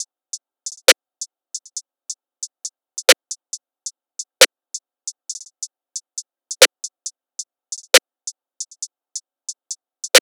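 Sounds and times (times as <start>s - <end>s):
percussion loop in A minor: 0.7s - 1.0s, 1.6s - 1.8s, 2.4s - 3.5s, 5.1s - 7.1s, 7.7s - 8.9s, 9.5s - 10.2s.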